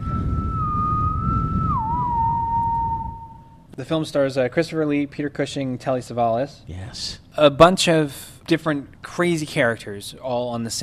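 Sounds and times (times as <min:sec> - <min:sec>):
dull low rumbling: 0:00.0 - 0:03.5
haunting whistle from a horror film soundtrack: 0:00.0 - 0:03.7
speech: 0:03.8 - 0:10.8.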